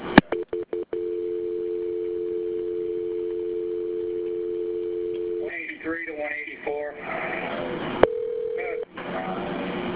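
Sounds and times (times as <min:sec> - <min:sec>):
phone line clicks during call transfer: 0:00.3 - 0:05.4
phone line ringing tone during call transfer: 0:00.4 - 0:05.5, 0:08.0 - 0:08.8
voices over a phone line: 0:05.4 - 0:07.8, 0:08.6 - 0:09.7.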